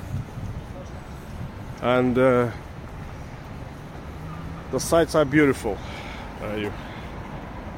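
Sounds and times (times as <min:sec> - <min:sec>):
wind buffeting the microphone on the river Moskva: 0:00.0 - 0:04.1
speech: 0:01.8 - 0:02.6, 0:04.7 - 0:06.9.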